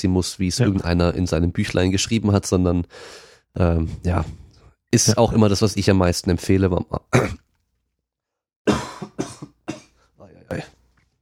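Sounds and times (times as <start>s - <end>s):
speech: 0.0s - 7.4s
forceful coughs with a throat-clearing quality: 7.2s - 7.4s, 8.7s - 10.7s.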